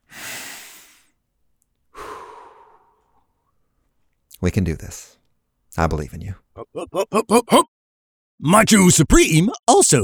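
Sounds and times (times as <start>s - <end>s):
deep breath in and out: 0.0s - 1.2s, 1.9s - 3.3s
speech: 4.4s - 5.2s, 5.8s - 7.7s, 8.4s - 10.0s.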